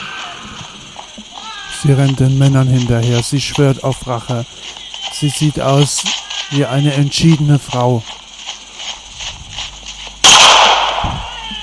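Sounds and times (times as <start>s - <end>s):
speech: 1.8s - 8.2s
gunshot with long rumbling echo: 10.2s - 11.2s.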